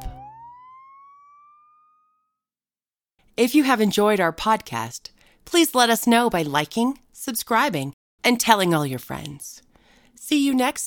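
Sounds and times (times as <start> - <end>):
police siren wailing: 0.0 - 1.8
speech: 3.4 - 10.8.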